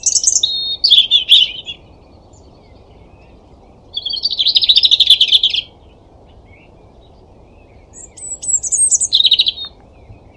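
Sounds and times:
European robin giving high twittering phrases: 0.0s - 10.3s
steady low background hiss: 0.0s - 10.3s.

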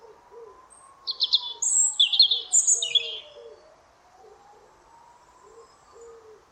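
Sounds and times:
European robin singing: 0.5s - 3.8s.

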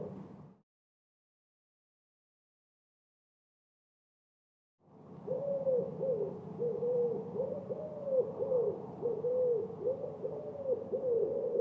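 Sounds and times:
bird hooting: 5.2s - 11.5s.

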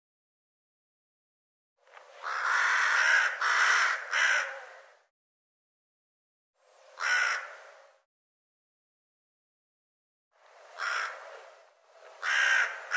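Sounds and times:
bird harsh raspy cawing: 2.2s - 5.0s, 7.0s - 8.0s, 10.8s - 11.4s, 12.2s - 12.9s.

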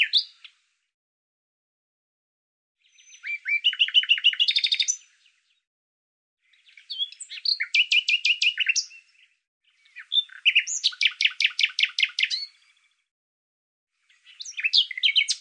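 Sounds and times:
bird singing sharp chirps and a rattling trill: 0.0s - 0.5s, 2.8s - 5.6s, 6.4s - 13.1s, 14.0s - 15.4s.

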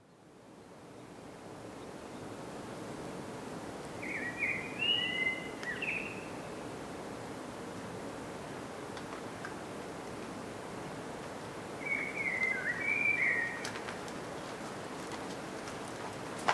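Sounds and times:
quiet background noise: 0.0s - 16.5s
Common blackbird Turdus merula singing a whistled phrase: 4.0s - 6.4s, 11.8s - 13.7s.

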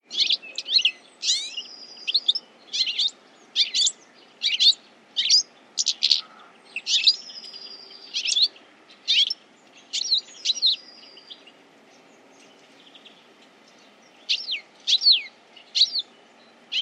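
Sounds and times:
bird chirping: 0.0s - 16.8s.

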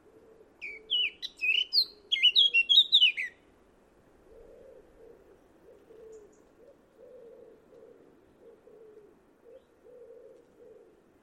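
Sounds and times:
bird chirping: 0.6s - 3.4s.

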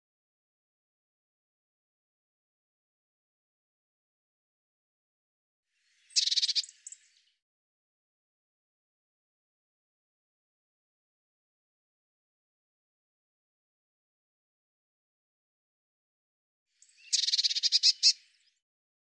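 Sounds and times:
Eurasian blue tit churring call: 6.1s - 7.0s, 17.0s - 18.2s.

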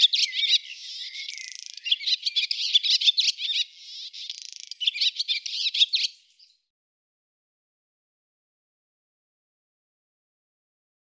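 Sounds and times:
barn swallow twittering song: 0.0s - 6.7s.

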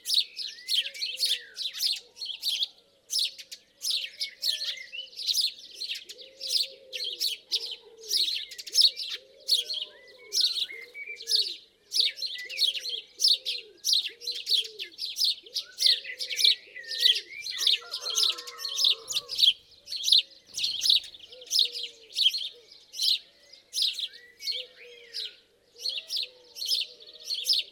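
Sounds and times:
house sparrow chirping: 0.0s - 27.6s.

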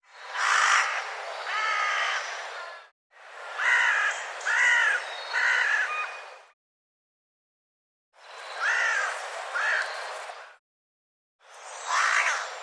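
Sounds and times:
bird giving harsh croaking caw-like calls: 0.3s - 2.4s, 3.6s - 6.2s, 8.6s - 10.6s, 11.8s - 12.5s.

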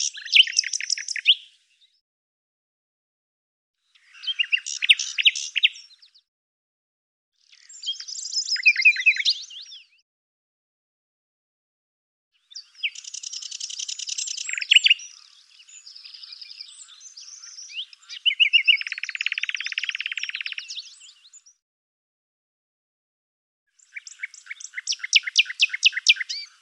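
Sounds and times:
bird singing rapid chirps, buzzy trills and whistled notes: 0.0s - 2.0s, 3.9s - 6.3s, 7.4s - 10.0s, 12.4s - 21.6s, 23.7s - 26.6s.

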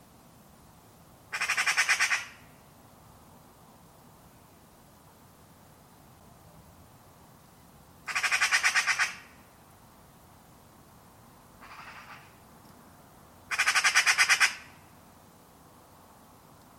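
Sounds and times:
bird giving harsh buzzy squawks: 1.3s - 2.4s, 8.1s - 9.3s, 11.6s - 12.3s, 13.5s - 14.8s.

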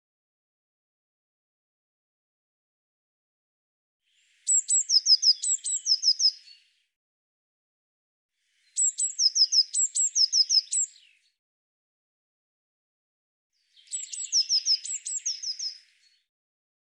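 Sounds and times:
Eurasian blue tit calls: 4.5s - 6.4s, 8.8s - 11.0s, 13.8s - 16.0s.

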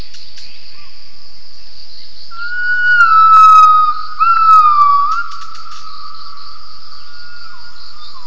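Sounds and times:
gibbon long whistled call: 2.4s - 6.4s.

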